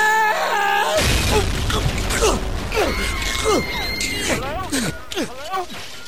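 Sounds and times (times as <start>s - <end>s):
voices groaning and bellowing imitating a jet ski smashing through a ship: 0.0s - 5.9s
loud rough crashing noise of a jet ski smashing through a ship's side: 1.0s - 5.2s.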